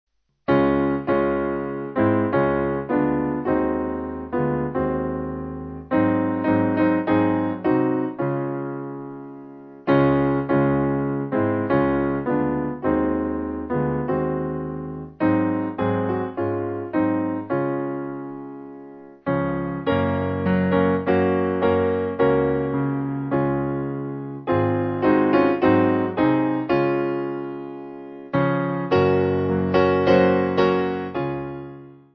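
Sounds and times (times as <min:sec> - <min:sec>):
piano: 0:00.4 - 0:32.1.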